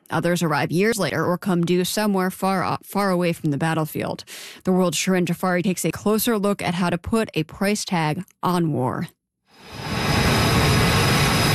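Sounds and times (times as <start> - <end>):
speech: 0.1 - 9.9
fighter jet roaring as it launches from an aircraft carrier deck in the Strait of Hormuz: 9.6 - 11.5
thin high whine of fighter jet engine: 9.6 - 11.5.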